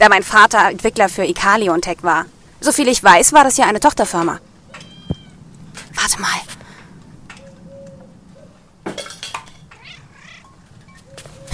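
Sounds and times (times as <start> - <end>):
speech: 0.0 - 4.5, 6.0 - 6.6
stray cat meowing: 4.7 - 5.4, 9.7 - 11.0.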